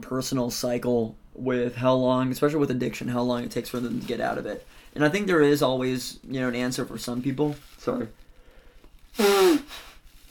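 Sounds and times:
speech: 0.0 - 8.2, 9.2 - 9.8
person blowing nose with a honking tone: 9.1 - 10.2.

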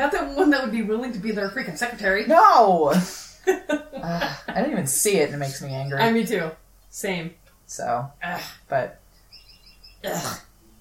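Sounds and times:
speech: 0.0 - 9.0, 10.0 - 10.5
bird chirping: 5.2 - 7.1, 8.9 - 10.8.

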